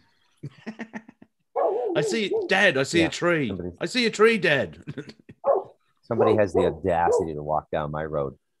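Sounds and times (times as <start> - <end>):
dog barking: 1.6 - 2.6, 5.4 - 7.4
speech: 2.0 - 5.2, 6.1 - 8.4.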